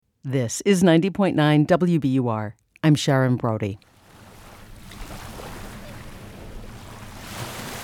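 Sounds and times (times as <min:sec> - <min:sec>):
steady outdoor wind on a breezy day: 0:00.1 - 0:07.8
speech: 0:00.2 - 0:03.9
waves lapping along a shoreline at Salem Willows Park: 0:03.8 - 0:07.8.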